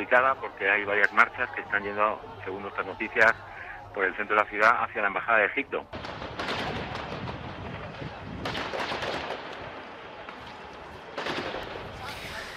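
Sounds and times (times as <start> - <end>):
laughter: 0.0 - 4.9
speech: 0.0 - 6.0
dense crowd noise: 0.0 - 12.5
gunfire: 5.9 - 10.4, 11.1 - 12.0.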